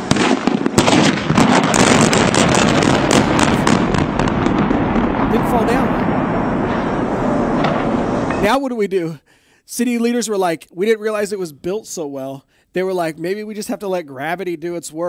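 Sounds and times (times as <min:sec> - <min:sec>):
demolition charges cracking and booming: 0:00.0 - 0:08.6
heavy rumbling roar: 0:01.3 - 0:08.5
speech: 0:08.4 - 0:15.0.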